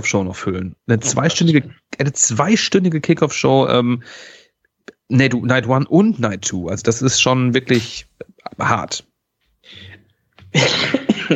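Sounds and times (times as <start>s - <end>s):
speech: 0.0s - 4.4s, 5.1s - 9.9s, 10.5s - 11.3s
person coughing: 10.5s - 11.3s.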